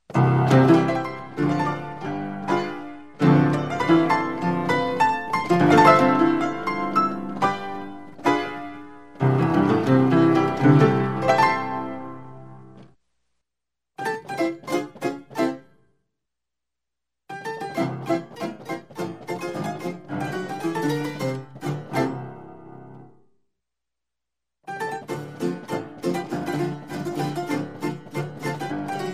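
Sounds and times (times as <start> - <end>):
piano playing: 0.1 - 12.8, 17.4 - 23.1, 24.7 - 29.1.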